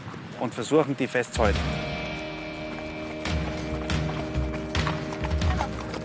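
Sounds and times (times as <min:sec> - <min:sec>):
horse hoofbeats galloping during a riding lesson: 0:00.0 - 0:06.0
speech: 0:00.4 - 0:01.8
humming tonal background: 0:01.5 - 0:06.0.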